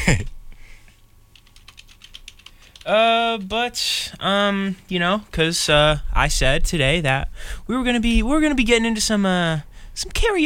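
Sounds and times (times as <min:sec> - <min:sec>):
speech: 0:00.1 - 0:00.4, 0:02.8 - 0:10.4
fingers typing on a computer keyboard: 0:01.3 - 0:02.9.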